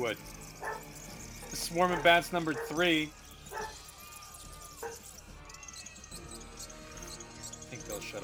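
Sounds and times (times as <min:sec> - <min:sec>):
speech: 0:00.0 - 0:00.8, 0:01.5 - 0:03.8, 0:07.8 - 0:08.2
dogs barking and yipping: 0:00.6 - 0:03.8, 0:04.7 - 0:05.1.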